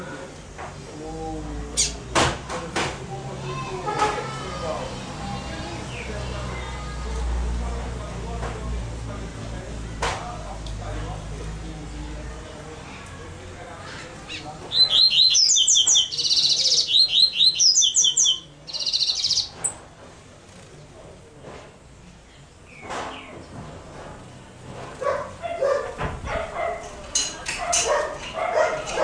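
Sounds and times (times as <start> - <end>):
low rumbling background noise: 0.0 - 29.0
double-collared seedeater song: 14.3 - 19.8.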